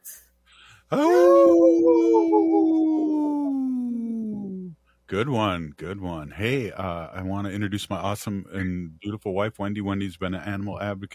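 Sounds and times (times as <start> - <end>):
speech: 0.9 - 3.4, 5.1 - 11.1
wolf howling: 0.9 - 4.5.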